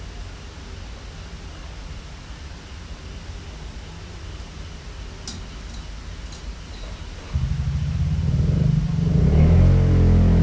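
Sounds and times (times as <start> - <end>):
motorcycle engine passing by: 7.3 - 10.4.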